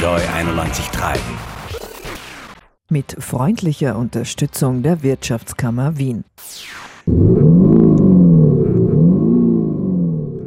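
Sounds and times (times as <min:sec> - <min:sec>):
speech: 0:00.1 - 0:01.9, 0:02.9 - 0:08.3
descending whoosh: 0:07.1 - 0:10.4
new Tesla car engine drone: 0:07.1 - 0:10.4.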